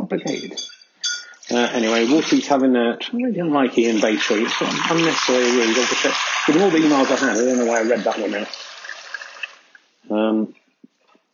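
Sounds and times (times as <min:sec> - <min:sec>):
speech: 0:00.1 - 0:00.8, 0:01.5 - 0:08.7, 0:10.0 - 0:10.6
faint clinks and drips: 0:00.2 - 0:01.6
water poured for a dog: 0:01.4 - 0:02.6, 0:03.7 - 0:09.8.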